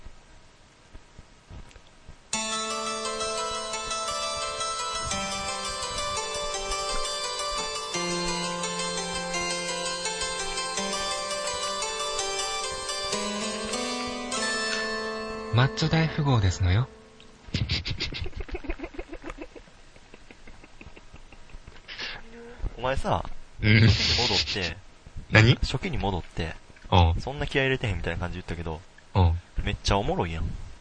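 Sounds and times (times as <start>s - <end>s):
podcast musical jingle with bright synth-like tones: 2.4s - 17.5s
speech: 15.6s - 17.0s, 22.9s - 28.9s, 29.6s - 30.6s
laughter: 17.5s - 21.8s.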